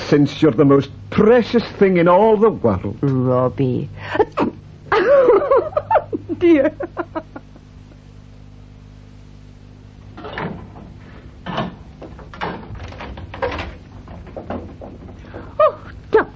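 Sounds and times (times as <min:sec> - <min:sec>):
quiet low hum: 0:00.0 - 0:16.3
speech: 0:00.1 - 0:05.4, 0:06.4 - 0:07.2
laughter: 0:04.0 - 0:07.8
kitchen door opening and closing: 0:10.1 - 0:15.5
creaks: 0:10.1 - 0:16.0
wooden knocks: 0:10.2 - 0:15.5
shuffling thumps: 0:10.3 - 0:16.1.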